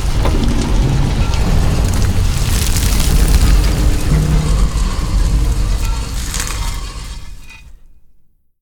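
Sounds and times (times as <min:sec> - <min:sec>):
spiral door opening: 0:00.1 - 0:06.9.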